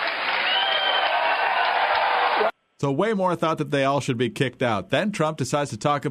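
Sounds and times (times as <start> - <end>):
large crowd clapping and cheering at a rally: 0.0 - 2.5
speech: 2.4 - 6.0.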